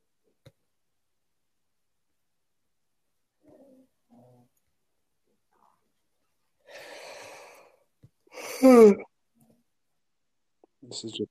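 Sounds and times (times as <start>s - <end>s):
heavy breathing with airy exhale and voiced sigh: 6.6s - 9.0s.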